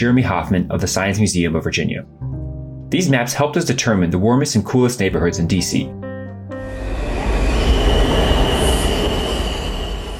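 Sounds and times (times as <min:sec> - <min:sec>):
speech: 0:00.0 - 0:06.0
metro train wheels squealing at Columbia Heights Metro Station in Washington DC: 0:06.6 - 0:10.1.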